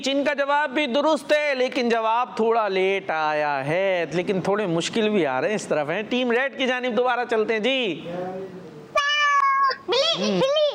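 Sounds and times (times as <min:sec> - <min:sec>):
speech: 0:00.0 - 0:08.6, 0:09.9 - 0:10.7
cat meowing: 0:09.0 - 0:09.8.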